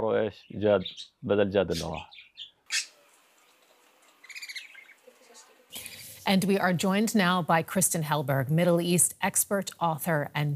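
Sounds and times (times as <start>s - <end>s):
speech: 0.0s - 2.8s, 6.3s - 10.5s
pet bird chirping: 0.0s - 6.2s
pet bird giving harsh voice-like squawks: 0.4s - 3.0s, 4.1s - 6.1s.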